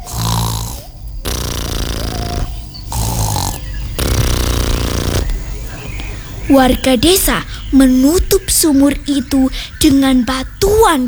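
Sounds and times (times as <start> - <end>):
person snoring: 0.0 - 5.5
speech: 6.5 - 11.0.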